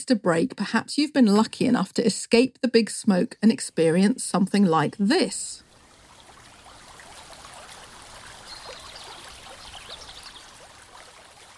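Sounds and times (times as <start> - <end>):
speech: 0.0 - 5.6
flowing stream water: 5.6 - 11.5.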